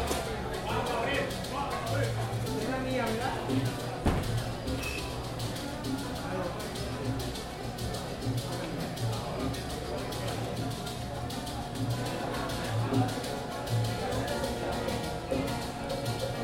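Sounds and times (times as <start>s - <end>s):
overlapping voices chatting on a street in Havana: 0.0s - 16.4s
sharp knock: 4.0s - 4.5s.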